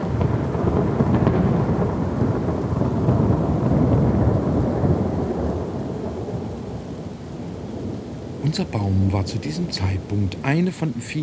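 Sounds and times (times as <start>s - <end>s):
deep thunder rolling: 0.0s - 6.8s, 7.5s - 11.2s
heavy rain: 0.0s - 11.2s
speech: 8.6s - 11.2s.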